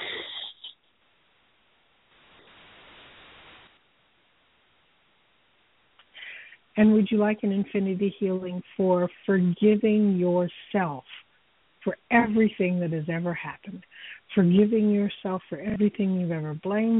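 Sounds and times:
deep breathing during a guided healing session: 6.0s - 6.7s, 13.8s - 14.3s
speech: 6.8s - 11.2s, 11.8s - 16.9s.

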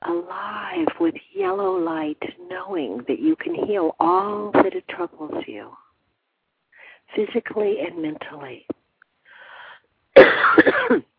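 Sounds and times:
speech: 0.2s - 5.8s, 7.1s - 8.8s, 10.2s - 11.1s
person coughing: 10.2s - 11.1s.

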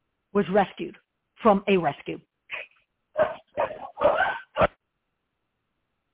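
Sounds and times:
speech: 0.3s - 2.3s
dog barking at a ringing doorbell: 3.2s - 4.7s.

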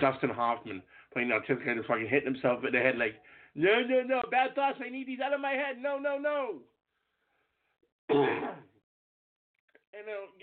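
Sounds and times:
speech: 0.0s - 6.7s, 8.1s - 8.7s, 10.0s - 10.4s
harsh raspy cough: 8.1s - 8.7s.

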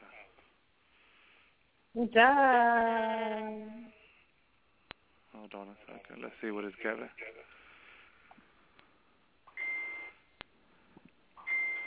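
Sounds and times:
speech: 2.0s - 3.7s, 5.4s - 7.6s
phone chat notification beeps from a group chat tag: 9.6s - 10.1s, 11.4s - 11.8s.

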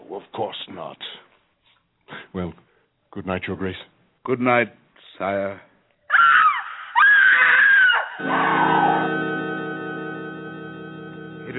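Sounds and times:
speech: 0.1s - 1.3s, 2.1s - 5.7s, 8.2s - 9.3s
woman screaming: 6.1s - 9.1s.

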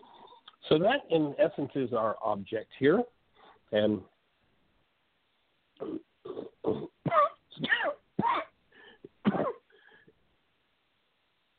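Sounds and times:
speech: 0.7s - 4.1s
person coughing after inhaling water: 5.8s - 9.7s
throat-clearing: 5.8s - 9.7s.

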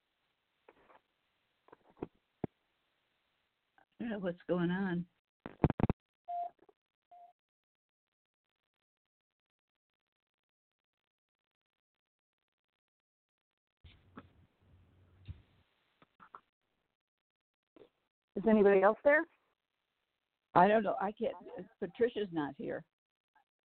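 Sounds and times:
speech: 4.0s - 5.2s, 18.5s - 19.4s, 20.5s - 22.9s
phone line noise with clicks and crackles: 5.5s - 5.9s
brief electronic tone over a phone line as a call drops: 6.3s - 6.5s.

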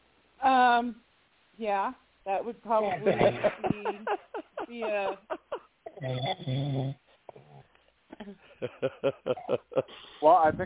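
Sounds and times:
speech: 0.4s - 5.4s, 6.0s - 7.0s, 8.2s - 10.6s
laughter: 2.8s - 6.1s, 8.4s - 10.0s
loud drawn-out nasal snore: 6.0s - 7.6s.

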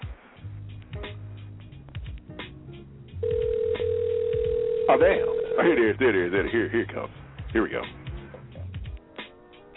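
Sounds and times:
phone line noise: 3.2s - 5.8s
speech: 4.9s - 8.0s.

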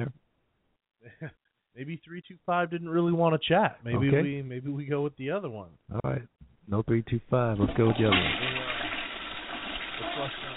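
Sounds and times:
speech: 1.1s - 8.6s, 10.2s - 10.5s
toilet flush sound effect: 7.5s - 10.5s.

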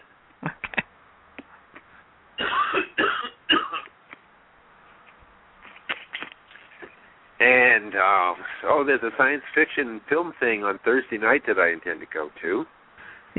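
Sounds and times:
person coughing: 2.4s - 3.9s
speech: 7.4s - 12.8s.

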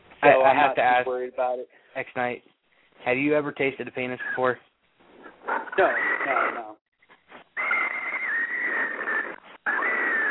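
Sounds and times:
speech: 0.2s - 4.7s, 5.8s - 6.7s
high-pitched whistle: 7.6s - 10.3s.

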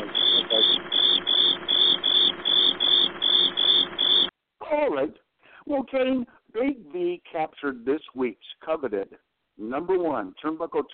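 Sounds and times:
cricket chirping: 0.0s - 4.3s
speech: 5.0s - 10.9s.

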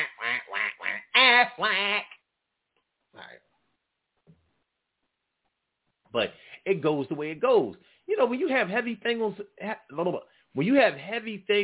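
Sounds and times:
person imitating a duck quacking: 0.0s - 2.2s
speech: 1.4s - 2.1s, 6.1s - 11.6s.

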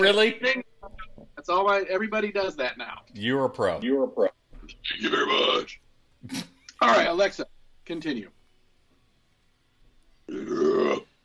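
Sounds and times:
speech: 0.0s - 0.7s, 1.5s - 8.4s, 10.3s - 11.1s
loud bubbly gurgling burp: 10.3s - 11.1s.

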